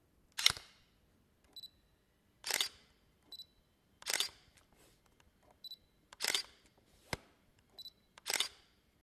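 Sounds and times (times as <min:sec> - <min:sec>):
camera shutter with flash: 0:00.4 - 0:00.8, 0:02.4 - 0:03.4, 0:04.0 - 0:04.6, 0:06.2 - 0:06.7, 0:07.8 - 0:08.7.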